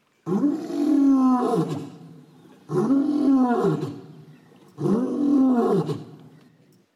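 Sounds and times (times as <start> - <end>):
lion roaring: 0.3 - 2.0, 2.7 - 4.1, 4.8 - 6.2.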